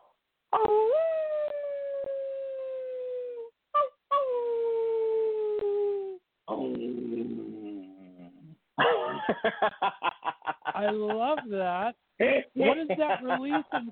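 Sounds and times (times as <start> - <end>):
person imitating a wolf howl: 0.6 - 8.5
laughter: 8.8 - 11.4, 12.6 - 13.9
speech: 9.4 - 10.1, 10.8 - 13.9.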